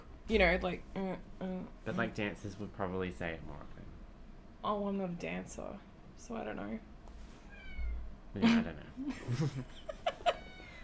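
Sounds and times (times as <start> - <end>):
speech: 0.3 - 3.9, 4.6 - 6.9, 8.4 - 10.0
cat giving short chirpy meows: 7.5 - 8.0, 10.3 - 10.8.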